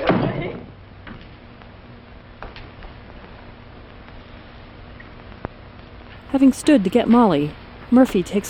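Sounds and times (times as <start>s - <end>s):
door swinging shut with a dull thud: 0.0s - 1.2s
speech: 6.3s - 8.4s.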